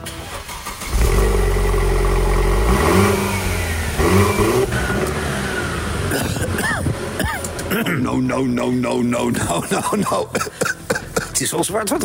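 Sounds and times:
two-seater roadster convertible car engine starting, idling and revving: 0.0s - 8.2s
speech: 8.1s - 10.8s, 11.4s - 12.0s
laughter: 9.2s - 11.5s.

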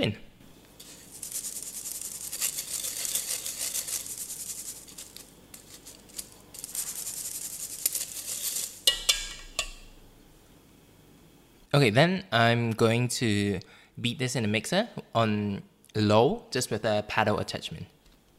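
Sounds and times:
speech: 0.0s - 0.2s, 11.8s - 18.0s
dark brown sugar rubbed through a metal sieve: 0.8s - 9.8s.

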